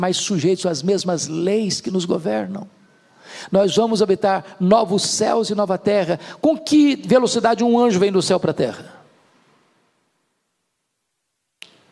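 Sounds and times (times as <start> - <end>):
speech: 0.0 - 9.0
faint room hiss: 0.0 - 11.9
finger snap: 11.6 - 11.9.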